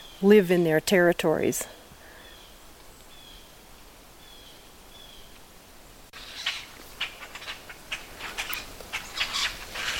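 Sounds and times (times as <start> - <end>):
speech: 0.2 - 1.8
grackles in a social flock chattering in fall: 6.2 - 9.9.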